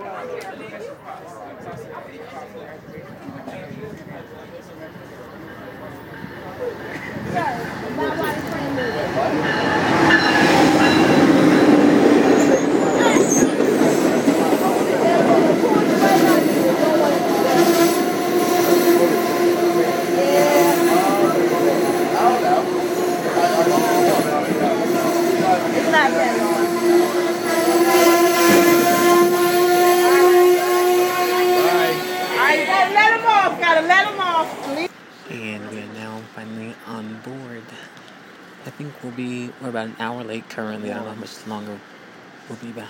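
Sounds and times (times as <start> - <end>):
people chattering indistinctly: 0.0 - 42.8
train clattering past on railroad tracks: 3.2 - 35.4
speech: 40.4 - 41.9, 42.5 - 42.8.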